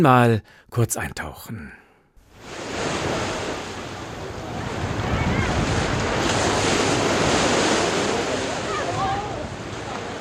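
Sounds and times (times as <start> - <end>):
speech: 0.0 - 1.8
ocean waves washing ashore: 2.3 - 10.1
wind buffeting the microphone: 2.9 - 10.1.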